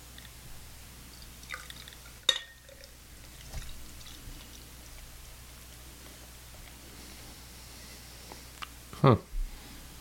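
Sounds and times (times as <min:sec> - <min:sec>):
filtered beer poured from a big bottle into an IPA glass: 0:01.1 - 0:05.1
glass clinks: 0:02.3 - 0:02.6.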